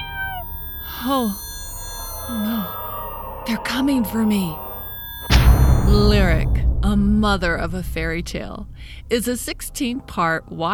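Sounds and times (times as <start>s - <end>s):
cat meowing: 0.0s - 5.3s
low steady hum: 0.0s - 10.7s
speech: 1.0s - 1.5s, 2.3s - 2.8s, 3.4s - 4.6s, 5.8s - 10.7s.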